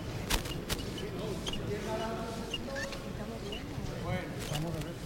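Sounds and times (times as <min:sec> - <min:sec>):
irregular thuds and scrapes: 0:00.0 - 0:01.9
shuffling footsteps of bearers carrying a heavy procession float: 0:00.0 - 0:04.9.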